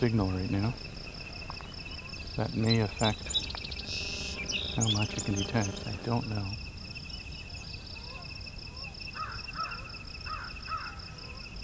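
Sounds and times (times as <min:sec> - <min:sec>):
speech: 0:00.0 - 0:01.0, 0:02.4 - 0:03.5, 0:04.8 - 0:06.6
high insect drone: 0:00.0 - 0:11.6
American crow cawing: 0:09.2 - 0:11.0.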